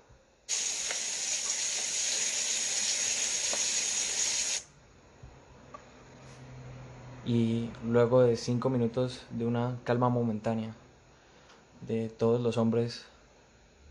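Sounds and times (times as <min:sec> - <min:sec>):
showers spraying boiling-hot water: 0:00.5 - 0:04.6
speech: 0:07.3 - 0:10.8, 0:11.9 - 0:13.1.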